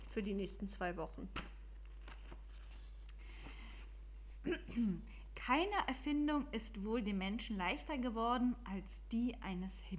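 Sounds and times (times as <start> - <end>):
flipping through book pages: 0.0 - 4.4
speech: 0.2 - 1.5, 4.4 - 9.9.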